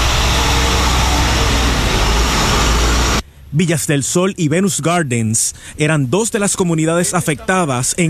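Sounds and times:
heavy water trucks driving past: 0.0s - 3.2s
speech: 3.6s - 8.0s.

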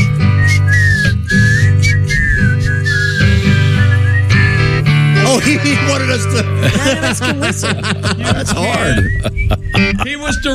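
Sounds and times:
several people whistling a tune together: 0.0s - 4.8s, 8.5s - 10.5s
steady low musical backing: 0.0s - 10.5s
laughter: 5.2s - 10.5s
speech: 6.1s - 10.5s.

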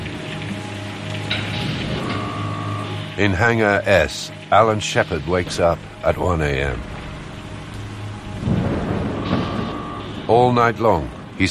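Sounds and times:
heavy rain pouring down on Cape Canaveral: 0.0s - 11.4s
speech: 3.2s - 6.9s, 10.3s - 11.4s
faint low rumble: 5.0s - 11.4s.

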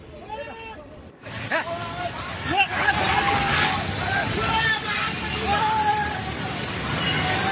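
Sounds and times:
crowd of voices murmuring and calling out: 0.0s - 7.4s
flooded river water crashing against bridge: 1.1s - 7.4s.

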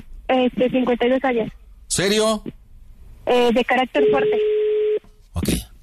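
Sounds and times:
speech: 0.3s - 2.6s, 3.2s - 4.5s, 5.4s - 5.7s
choppy voice-like phone audio: 5.4s - 5.7s.

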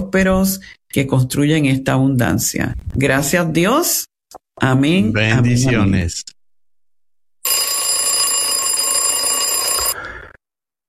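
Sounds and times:
speech: 0.0s - 6.4s
alarm clock ringing with shrill metallic clatter: 7.4s - 10.0s.

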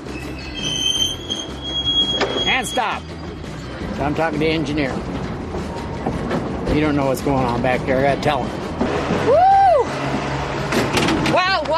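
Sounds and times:
1900s train wheels squealing on rails pulling into depot: 0.0s - 4.1s
deep rumble of 1900s train pulling into depot: 0.0s - 11.7s
speech: 2.6s - 3.1s, 4.0s - 5.1s, 6.0s - 8.6s.

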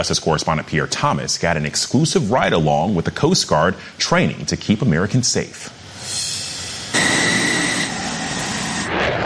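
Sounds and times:
speech: 0.0s - 6.2s
F-16 fighter jet taking off: 5.8s - 9.2s.

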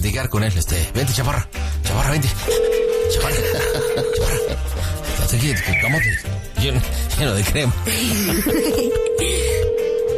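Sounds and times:
speech: 0.2s - 9.9s
telephone call ringing unanswered: 2.5s - 4.8s, 8.8s - 10.1s
laughter: 3.4s - 4.9s, 7.9s - 9.6s.

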